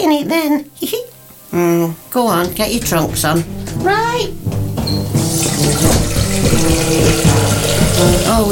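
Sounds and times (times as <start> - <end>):
speech: 0.0 - 4.6, 8.0 - 8.5
water pouring from a tap into a bowl: 5.3 - 8.5.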